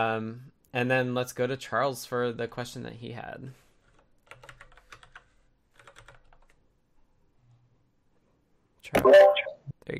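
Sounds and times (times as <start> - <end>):
speech: 0.0 - 3.6
computer keyboard typing: 3.9 - 6.6.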